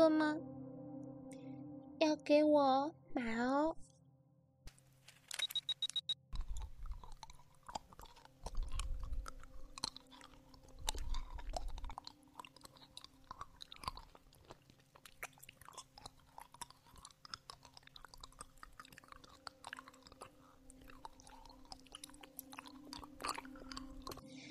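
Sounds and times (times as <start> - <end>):
speech: 2.0 - 3.9
person sucking on a lollipop: 6.3 - 24.3.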